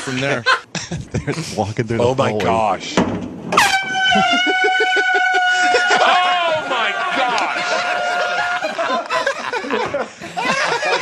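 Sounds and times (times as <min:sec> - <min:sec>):
laughter: 0:00.0 - 0:01.7, 0:04.0 - 0:10.9
speech: 0:00.0 - 0:05.8
air horns blasting in a hallway: 0:03.5 - 0:09.0.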